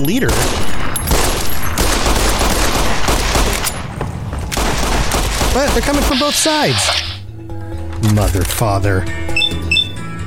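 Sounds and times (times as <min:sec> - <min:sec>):
speech: 0:00.0 - 0:00.8, 0:05.5 - 0:07.1, 0:08.0 - 0:09.6
video game gunfire barrage: 0:00.3 - 0:06.3.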